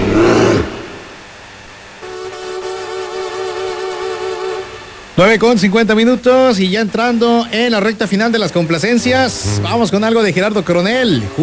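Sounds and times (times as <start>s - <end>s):
bear roar: 0.0s - 1.0s
steady humming tonal sound: 0.0s - 11.4s
speech: 5.2s - 11.4s.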